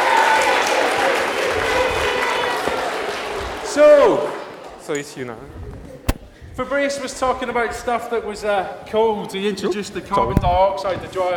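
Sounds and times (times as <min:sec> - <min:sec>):
audience applause: 0:00.0 - 0:04.5
speech: 0:04.9 - 0:05.9, 0:06.6 - 0:11.3.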